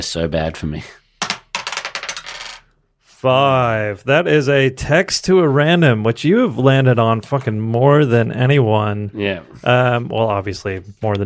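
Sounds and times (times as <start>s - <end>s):
speech: 0.0s - 1.0s, 3.2s - 11.2s
dice rolling across a hard surface: 1.2s - 2.6s.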